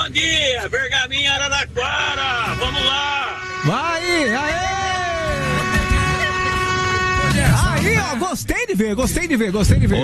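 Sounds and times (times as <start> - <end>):
speech: 0.1 - 4.8, 8.0 - 10.0
vehicle horns honking to announce arriving cars: 1.8 - 8.2.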